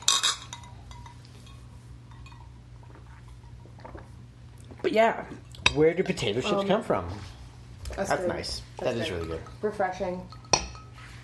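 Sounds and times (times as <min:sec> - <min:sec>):
glasses clinking together in a toast: 0:00.0 - 0:03.9, 0:08.8 - 0:11.1
speech: 0:04.8 - 0:07.4, 0:08.0 - 0:10.4.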